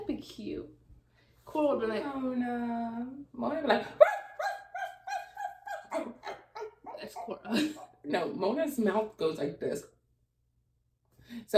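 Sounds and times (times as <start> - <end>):
speech: 1.5 - 4.2, 7.3 - 10.0, 11.3 - 11.5
dog barking: 4.0 - 6.5
laughter: 4.4 - 8.0.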